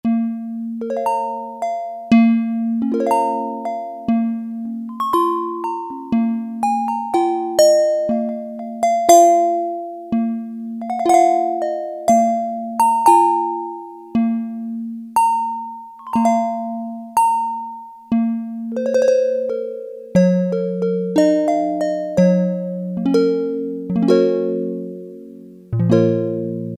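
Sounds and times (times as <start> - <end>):
synthesized lute: 0.0 - 26.7.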